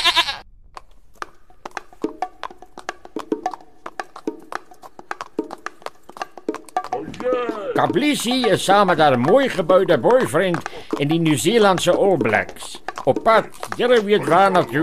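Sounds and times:
small goat bleating in short clipped calls: 0:00.0 - 0:00.4
speech: 0:07.8 - 0:14.8.

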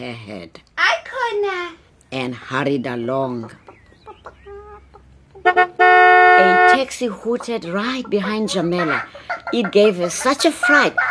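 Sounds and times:
speech: 0:00.0 - 0:03.7, 0:06.4 - 0:11.0
chicken clucking and squawking in a girl's arms on a street: 0:03.2 - 0:05.8, 0:06.4 - 0:11.0.

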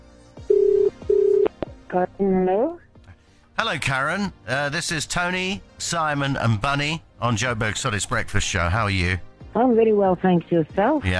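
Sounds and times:
phone ringback tones through a phone line: 0:00.5 - 0:01.6
speech: 0:01.9 - 0:02.8, 0:03.6 - 0:11.1.

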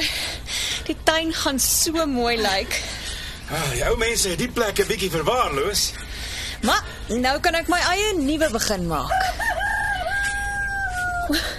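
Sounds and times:
speech: 0:00.9 - 0:02.9, 0:03.5 - 0:06.0, 0:06.6 - 0:09.4
rooster crowing: 0:09.0 - 0:11.5.

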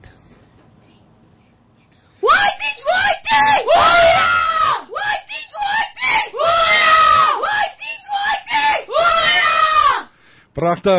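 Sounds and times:
group of primary school pupils shouting a rhythmic war cry: 0:02.2 - 0:10.1
speech: 0:10.6 - 0:10.9.

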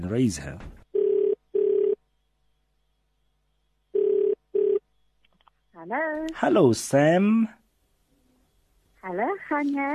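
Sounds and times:
speech: 0:00.0 - 0:00.8, 0:05.9 - 0:07.6, 0:09.0 - 0:09.9
short electronic ring tones on an outgoing phone call: 0:00.9 - 0:02.0, 0:03.9 - 0:04.8.

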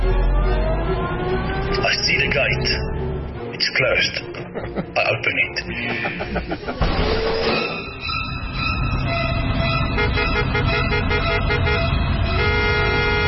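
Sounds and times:
siren-like wail: 0:00.0 - 0:03.2, 0:07.5 - 0:13.2
steady traffic engine rumble: 0:00.0 - 0:13.2
speech: 0:01.8 - 0:03.0, 0:03.6 - 0:07.8, 0:10.0 - 0:12.0
laughter: 0:04.1 - 0:07.0
car horns honking in dense road traffic: 0:07.7 - 0:13.2.

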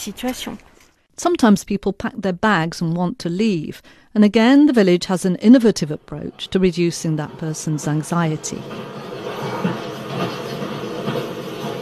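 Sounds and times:
speech: 0:00.0 - 0:09.1
train in motion rumble played in simulated carriage in library: 0:05.1 - 0:11.8.

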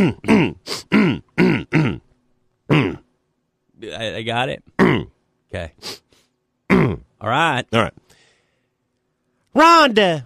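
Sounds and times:
speech: 0:00.0 - 0:00.3, 0:04.2 - 0:06.0, 0:06.9 - 0:08.0, 0:09.6 - 0:10.2
person clearing throat with harsh rumbling grunts: 0:00.0 - 0:02.1, 0:02.7 - 0:03.1, 0:04.8 - 0:05.2, 0:06.7 - 0:07.1.

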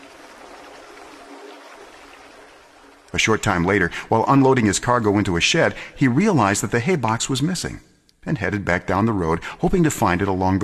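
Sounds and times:
creek water rushing beneath a bridge: 0:00.0 - 0:04.4
speech: 0:03.2 - 0:10.6.

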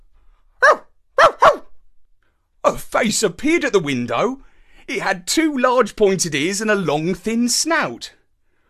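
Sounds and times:
dog at a house barking in answer to a doorbell: 0:00.6 - 0:01.7
speech: 0:03.0 - 0:08.2.

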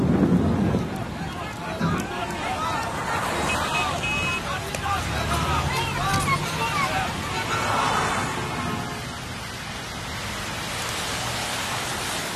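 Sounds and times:
low rumble of thunder: 0:00.0 - 0:02.0
faint murmur of indistinct voices: 0:00.0 - 0:09.4
steady heavy rain hissing in a seasonal storm: 0:00.0 - 0:12.3.

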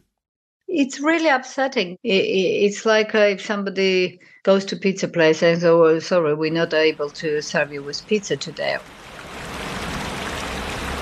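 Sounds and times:
speech: 0:00.7 - 0:09.1
mineral spring water flowing and gurgling in Borjomi Georgia: 0:06.9 - 0:11.0.

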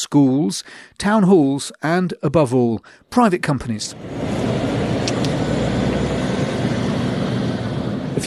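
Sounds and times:
speech: 0:00.0 - 0:04.7
heavy lorry engines rumbling out of a logistics company depot: 0:03.9 - 0:08.2.

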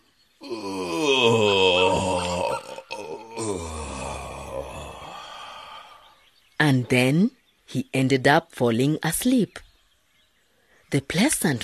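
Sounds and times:
lion yawning with a groaning moan: 0:00.4 - 0:06.0
speech: 0:06.7 - 0:09.7, 0:10.9 - 0:11.6.

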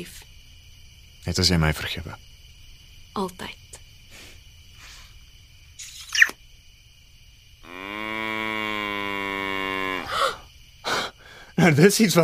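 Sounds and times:
speech: 0:00.0 - 0:00.3, 0:01.2 - 0:02.3, 0:03.2 - 0:03.6, 0:11.6 - 0:12.2
short squeaky noise: 0:05.8 - 0:06.4
cow standing on its hind legs mooing: 0:07.6 - 0:10.1.

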